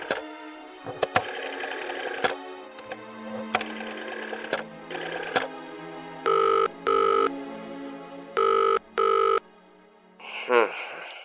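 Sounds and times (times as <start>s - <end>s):
rotary telephone dial whirring and clicking: 0.0s - 0.2s, 0.9s - 5.5s
telephone ringing tone in paired bursts: 0.0s - 0.2s, 1.0s - 2.4s, 3.6s - 5.5s, 6.3s - 7.3s, 8.4s - 9.4s.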